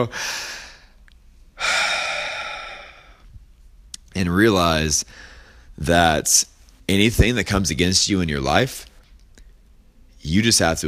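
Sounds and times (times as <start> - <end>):
speech: 0.0 - 0.5, 4.2 - 8.9, 10.2 - 10.8
faint soft breathing: 0.0 - 3.6, 5.0 - 5.8
deep breath drawn in: 0.1 - 1.0, 1.6 - 3.4, 5.0 - 5.8.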